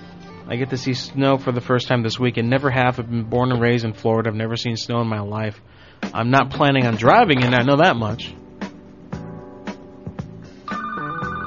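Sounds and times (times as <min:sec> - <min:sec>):
speech: 0:00.5 - 0:08.4
telephone ringing with an electronic trill: 0:10.7 - 0:11.4.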